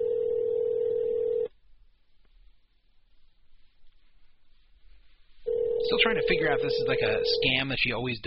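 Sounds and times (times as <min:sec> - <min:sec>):
electronic phone ringback tone on the caller's end: 0:00.0 - 0:01.5, 0:05.5 - 0:07.6
speech: 0:05.9 - 0:08.2.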